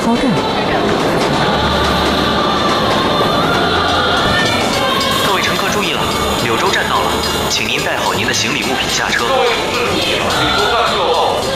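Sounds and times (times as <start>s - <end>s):
speech: 0.0s - 0.6s
passenger train rolling along rails heard from inside a carriage: 0.0s - 11.5s.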